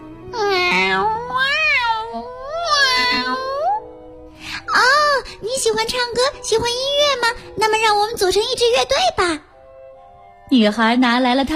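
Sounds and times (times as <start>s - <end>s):
cat meowing: 0.4s - 3.8s
speech: 5.7s - 9.5s, 10.5s - 11.5s.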